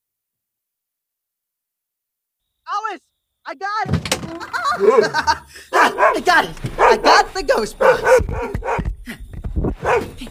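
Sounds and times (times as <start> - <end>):
speech: 2.9 - 9.2, 9.8 - 10.2
laughter: 4.3 - 8.5
puppy barking and yipping with a whiny edge: 4.7 - 8.8, 9.8 - 10.1.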